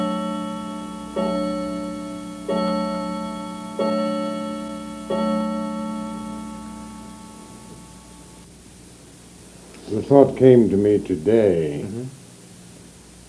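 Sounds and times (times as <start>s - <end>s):
clock chiming: 0.0s - 8.5s
speech: 9.9s - 12.2s.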